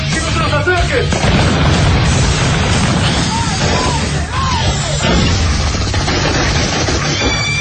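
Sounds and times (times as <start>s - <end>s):
speech: 0.9s - 1.4s
gunfire from militiamen shooting on a city street: 1.0s - 4.4s, 5.0s - 7.5s
booming blasts: 1.0s - 7.5s.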